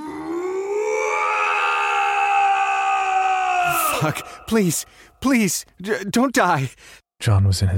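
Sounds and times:
man yelling in pain: 0:00.5 - 0:04.7
speech: 0:04.0 - 0:07.7.

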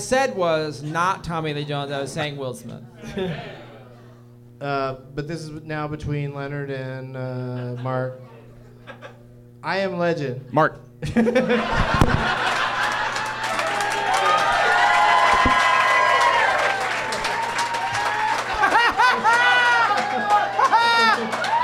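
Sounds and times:
speech: 0:00.0 - 0:03.6, 0:04.6 - 0:08.3, 0:08.9 - 0:12.5
crowd laughter: 0:03.0 - 0:03.8, 0:07.5 - 0:07.9, 0:08.6 - 0:09.2, 0:11.0 - 0:13.6, 0:18.5 - 0:21.4
crowd applauding: 0:11.8 - 0:21.6
scattered shouts: 0:13.5 - 0:21.6.

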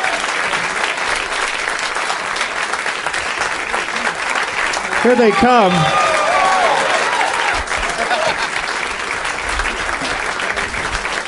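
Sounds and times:
clapping: 0:00.0 - 0:11.2
large crowd cheering: 0:00.0 - 0:11.2
laughter: 0:04.8 - 0:09.2, 0:09.8 - 0:10.8
people yelling: 0:04.9 - 0:08.4
speech: 0:05.0 - 0:06.0.

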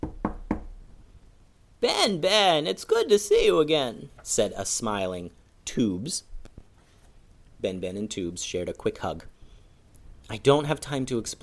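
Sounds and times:
knocking on a door: 0:00.0 - 0:00.8
speech: 0:01.8 - 0:06.3, 0:07.6 - 0:09.3, 0:10.3 - 0:11.4.

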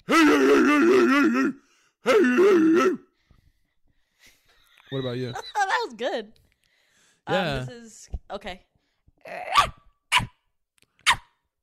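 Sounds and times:
person imitating a dog barking: 0:00.0 - 0:03.1, 0:09.2 - 0:10.3
speech: 0:04.9 - 0:06.4, 0:07.3 - 0:09.8.

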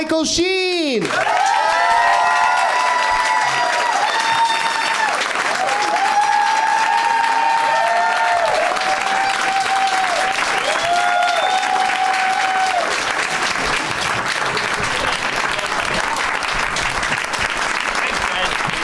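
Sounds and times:
speech: 0:00.0 - 0:01.6
large audience clapping: 0:00.0 - 0:18.8
audience whoops and cheers: 0:01.1 - 0:13.1.

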